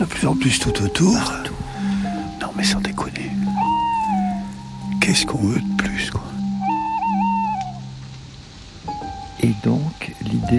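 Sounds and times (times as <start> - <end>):
speech: 0.0 - 1.6, 2.5 - 3.2, 5.1 - 6.3, 9.5 - 10.5
distant wolves howling at night: 1.3 - 9.3.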